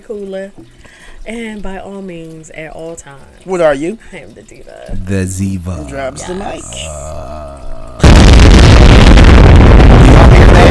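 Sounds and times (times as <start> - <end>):
speech: 0.0 - 7.3
loud explosion with crackling rumble: 7.3 - 10.7.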